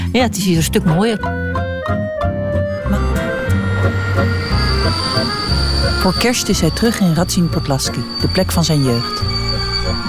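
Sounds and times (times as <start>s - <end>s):
train arriving at a small station with rumble and rhythmic clunks: 0.0s - 10.0s
speech: 0.2s - 1.6s, 6.0s - 10.0s
thin metallic squeal from train wheels: 2.8s - 10.0s.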